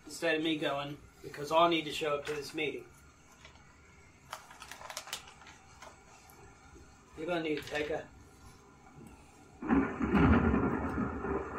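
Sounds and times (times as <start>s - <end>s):
speech: 0.2s - 3.0s, 7.2s - 8.2s
thunder rumbling: 6.5s - 11.5s.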